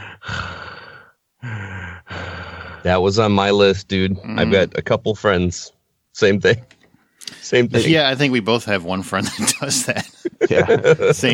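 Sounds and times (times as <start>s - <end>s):
person imitating loud congested sinus breathing: 0.0s - 3.0s
speech: 2.8s - 6.8s, 7.4s - 11.3s
laughter: 9.0s - 11.3s.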